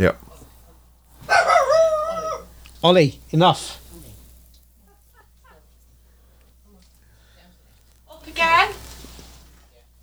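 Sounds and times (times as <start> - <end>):
speech: 0.0 - 0.2, 2.8 - 3.8
single loud dog bark falling into a whiny tail: 1.2 - 2.6.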